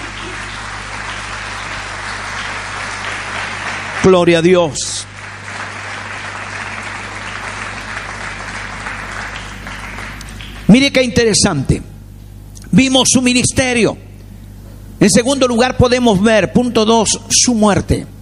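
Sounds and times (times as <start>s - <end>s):
audience applauding for the Lord: 0.0s - 11.0s
speech: 4.0s - 5.1s, 10.7s - 11.9s, 12.7s - 14.0s, 15.0s - 18.1s.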